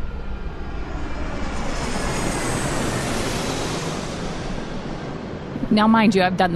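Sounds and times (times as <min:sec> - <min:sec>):
airplane jet engine roar during takeoff: 0:00.0 - 0:06.5
speech: 0:05.7 - 0:06.5.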